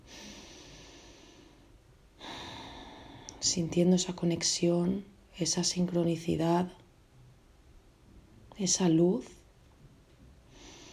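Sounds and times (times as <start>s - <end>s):
deep breathing in and out through the nose during a guided meditation: 0.0s - 3.3s, 10.5s - 10.9s
speech: 3.4s - 6.8s, 8.6s - 9.4s.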